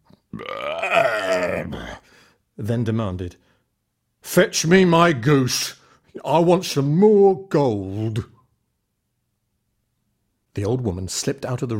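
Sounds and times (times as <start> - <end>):
loud belch after eating stew: 0.3 - 2.0
speech: 2.6 - 3.5, 4.2 - 8.3, 10.6 - 11.7.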